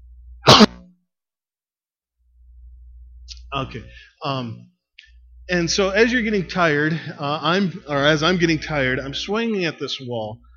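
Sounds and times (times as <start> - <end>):
person coughing: 0.4 - 0.8
speech: 3.5 - 4.8, 5.5 - 10.5.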